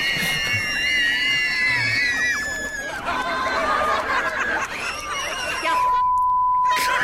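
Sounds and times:
laughter: 0:00.0 - 0:06.0, 0:06.7 - 0:07.0
crowd of upset children screaming: 0:00.0 - 0:06.1
steady electronic beep tone: 0:05.8 - 0:07.0.

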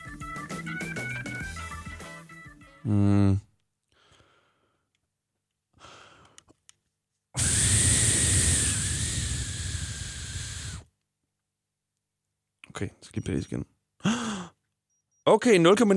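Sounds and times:
speech: 0:02.8 - 0:03.4, 0:12.8 - 0:13.8, 0:15.3 - 0:15.9
forceful breath blown into a breathalyzer: 0:07.4 - 0:10.8.

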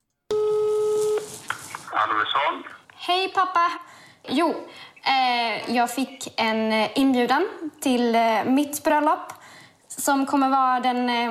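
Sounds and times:
telephone ringing tone before call connects: 0:00.3 - 0:01.3
faint open-line telephone hiss: 0:00.3 - 0:10.4
speech: 0:02.1 - 0:09.4, 0:10.0 - 0:11.3.

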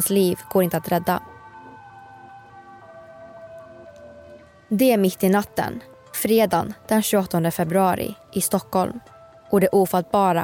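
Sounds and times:
speech: 0:00.0 - 0:01.3, 0:04.7 - 0:10.4
ambulance siren wailing in Stockholm at night: 0:00.0 - 0:04.8.

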